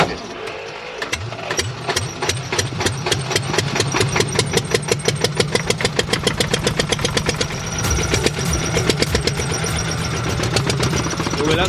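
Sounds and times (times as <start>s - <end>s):
single-cylinder four-stroke diesel engine cranking, catching and idling: 0.0s - 11.6s.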